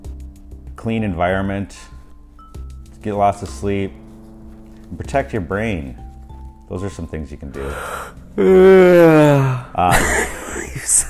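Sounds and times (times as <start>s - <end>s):
speech: 0.8s - 1.9s, 3.0s - 4.0s, 4.9s - 6.0s, 6.7s - 11.0s
person yawning: 7.6s - 10.6s.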